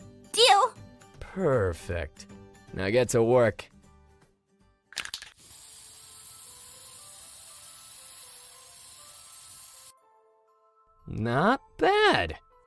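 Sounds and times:
speech: 1.4s - 3.7s, 11.2s - 12.4s
spray paint can rattling: 5.0s - 9.9s.

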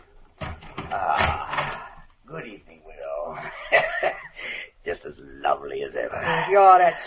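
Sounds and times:
door creaking and scraping as it swings open: 0.4s - 2.0s
speech: 5.6s - 7.0s.

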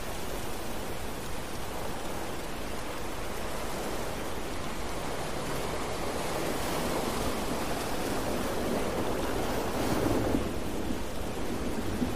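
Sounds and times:
ocean surf: 0.0s - 12.1s
rain: 0.0s - 12.1s.

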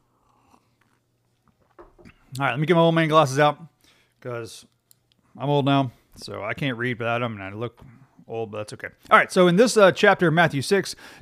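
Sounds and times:
person sipping coffee: 0.0s - 2.3s
speech: 2.0s - 4.7s, 5.4s - 11.2s.

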